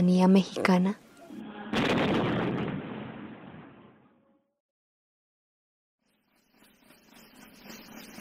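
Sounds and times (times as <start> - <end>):
speech: 0.0 - 1.0
ceremonial cannon shot in a 21-gun salute at an Olympic opening: 1.7 - 4.0.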